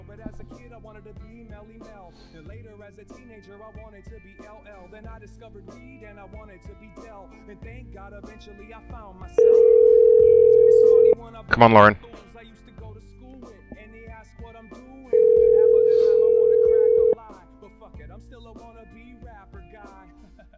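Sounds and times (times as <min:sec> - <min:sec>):
speech: 0:00.1 - 0:16.4
telephone dial tone: 0:09.4 - 0:11.1, 0:15.1 - 0:17.2.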